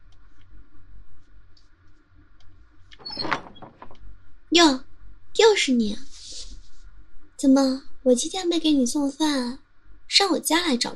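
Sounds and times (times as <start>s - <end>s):
door opening with creak and rattle: 2.9s - 4.1s
speech: 4.5s - 4.8s, 5.4s - 6.1s, 7.4s - 9.6s, 10.2s - 10.9s.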